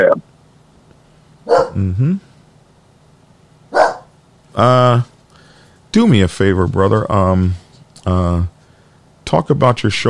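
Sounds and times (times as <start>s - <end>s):
dog barking: 1.4s - 1.8s, 3.7s - 4.1s
speech: 1.8s - 2.3s, 4.6s - 5.1s, 6.0s - 8.6s, 9.3s - 10.0s.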